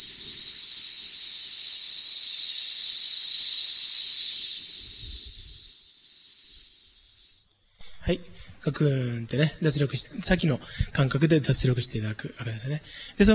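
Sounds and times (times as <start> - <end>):
long breath pushed out through the teeth with a hissing sss: 0.0 - 7.5
speech: 8.1 - 13.3.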